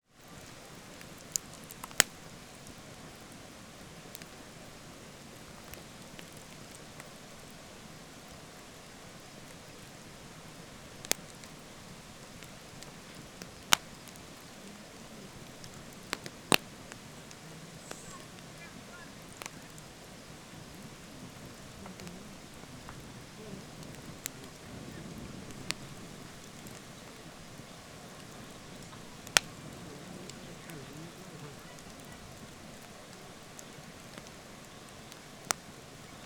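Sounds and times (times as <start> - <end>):
campfire near a waterfall at night: 0.0 - 36.2
voices at night: 12.7 - 36.2.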